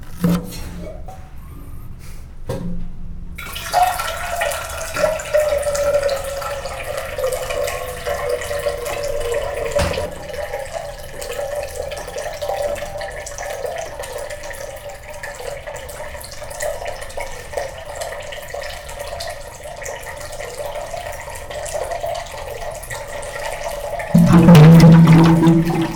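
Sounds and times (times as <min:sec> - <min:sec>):
water in Brazil: 0:03.4 - 0:25.9.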